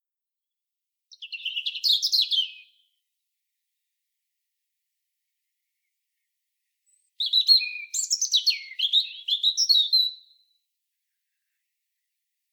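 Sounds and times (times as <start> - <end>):
European robin singing thin high warbling phrases: 1.1 - 3.0, 5.8 - 10.6.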